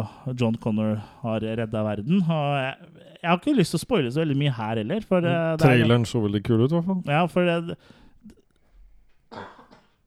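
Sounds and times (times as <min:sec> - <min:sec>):
speech: 0:00.0 - 0:08.4
short rough throaty cough: 0:09.3 - 0:10.0
throat clearing: 0:09.3 - 0:10.0.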